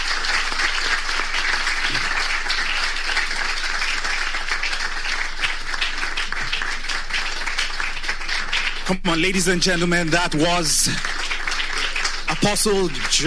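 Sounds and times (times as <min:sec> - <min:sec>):
large audience applauding after a speech: 0:00.0 - 0:13.2
speech: 0:08.9 - 0:11.1, 0:12.4 - 0:13.2.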